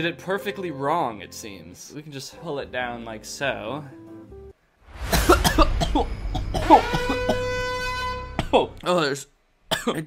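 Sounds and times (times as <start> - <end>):
speech: 0.0 - 4.0, 5.0 - 7.2, 8.5 - 10.0
harsh raspy coughs after inhaling a floating black fuzz: 5.1 - 7.6, 8.3 - 8.8, 9.7 - 10.0.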